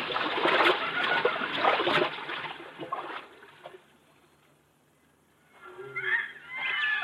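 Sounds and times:
water sloshing and splashing as people wade across a river: 0:00.0 - 0:04.0.

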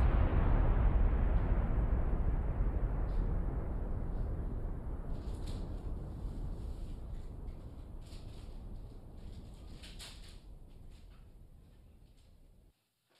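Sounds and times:
bomb explosion sound effect: 0:00.0 - 0:09.2.

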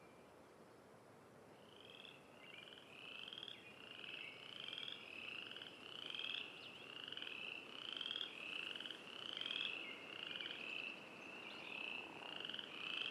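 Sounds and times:
frogs croaking in an evening forest: 0:01.6 - 0:13.1.

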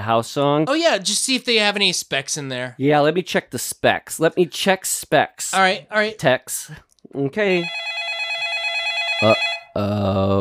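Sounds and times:
speech: 0:00.0 - 0:07.9, 0:09.2 - 0:10.4
telephone ringing with an electronic trill: 0:07.5 - 0:09.8.

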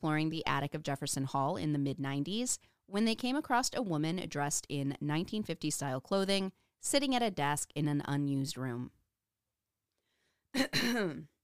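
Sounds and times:
speech: 0:00.0 - 0:09.0, 0:10.5 - 0:11.3
throat clearing: 0:10.6 - 0:11.3.

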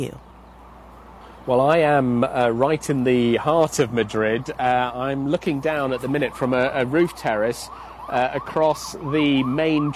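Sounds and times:
speech: 0:00.0 - 0:00.2, 0:01.5 - 0:09.9
ambulance siren wailing going round a large roundabout in Madrid: 0:03.2 - 0:09.9.

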